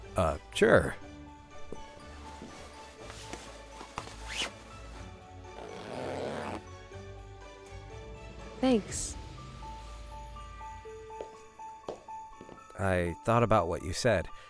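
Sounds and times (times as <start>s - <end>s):
speech: 0.2s - 1.0s, 8.6s - 9.2s, 12.8s - 14.4s
dress fabric rustling: 1.6s - 5.1s
dress zipper being zipped up: 4.0s - 4.8s, 5.5s - 6.7s.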